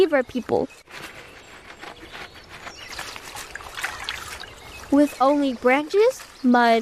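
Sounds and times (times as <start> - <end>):
speech: 0.0 - 1.2, 4.9 - 6.8
river water trickling and burbling over stones: 2.9 - 6.8.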